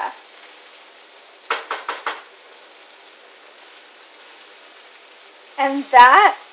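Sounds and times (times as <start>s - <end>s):
food sizzling in a frying pan: 0.0s - 6.5s
speech: 5.6s - 6.5s.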